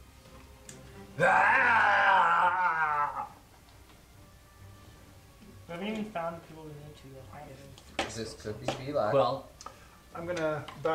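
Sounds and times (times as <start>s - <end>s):
speech: 1.2s - 2.0s, 5.7s - 9.5s, 10.1s - 10.9s
person voicing a bugbear's wailing roar: 1.2s - 3.4s.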